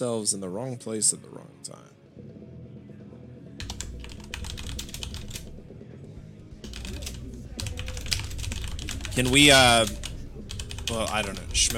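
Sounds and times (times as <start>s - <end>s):
speech: 0.0s - 2.4s, 9.2s - 10.0s, 10.9s - 11.7s
steady low hum: 3.0s - 11.7s
typing on a computer keyboard: 3.6s - 5.5s, 6.6s - 11.7s.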